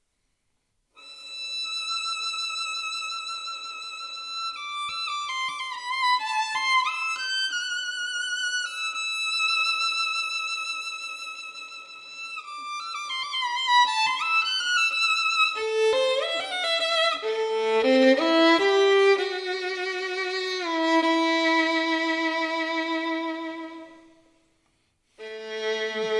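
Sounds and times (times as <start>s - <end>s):
Bohemian violin: 1.0s - 24.4s, 25.2s - 26.1s.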